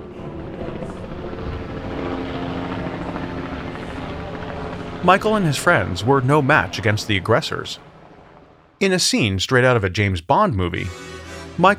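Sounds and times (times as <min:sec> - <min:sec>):
helicopter flying overhead: 0:00.0 - 0:08.8
speech: 0:05.0 - 0:07.9, 0:08.8 - 0:11.7.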